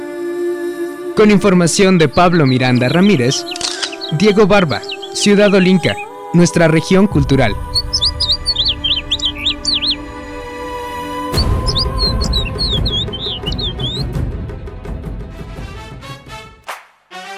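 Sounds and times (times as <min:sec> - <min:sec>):
speech: 0:01.2 - 0:07.8
birds chirping and singing: 0:01.2 - 0:14.3.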